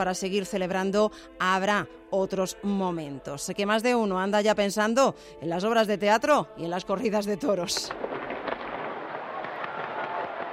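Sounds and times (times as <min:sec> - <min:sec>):
speech: 0:00.0 - 0:08.1
fireworks going off during festive celebrations: 0:07.8 - 0:10.5.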